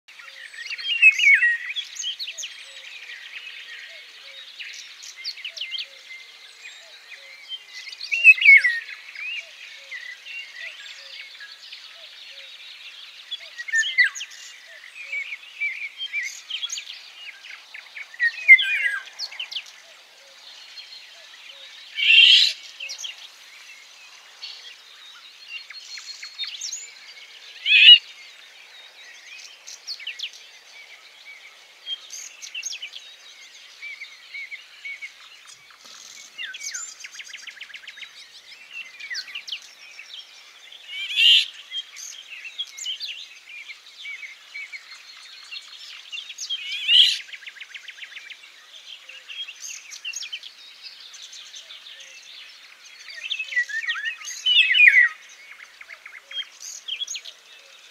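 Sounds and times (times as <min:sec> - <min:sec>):
birds singing: 0:00.1 - 0:57.8
golden oriole call: 0:27.6 - 0:28.0.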